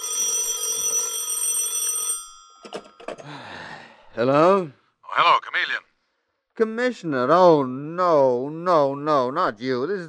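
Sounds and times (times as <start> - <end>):
telephone ringing shrilly beside bed: 0.0 - 3.2
speech: 4.2 - 5.8, 6.6 - 10.0.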